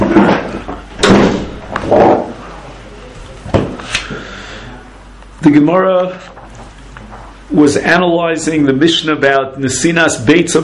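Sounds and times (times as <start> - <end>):
door pushed shut with knocks and thuds: 0.0 - 2.3
speech: 5.4 - 6.4, 7.5 - 10.6.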